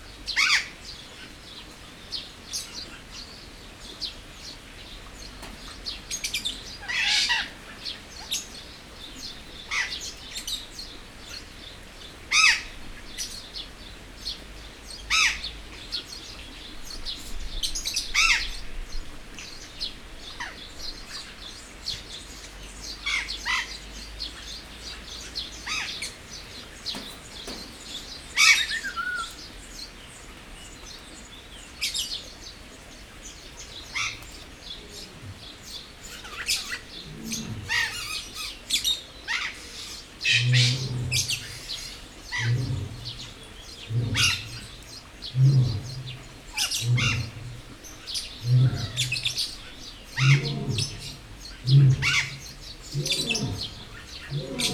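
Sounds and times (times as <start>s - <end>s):
birds chirping at a zoo: 0.0s - 54.7s
lion roaring at a zoo: 36.5s - 38.4s, 40.2s - 54.7s.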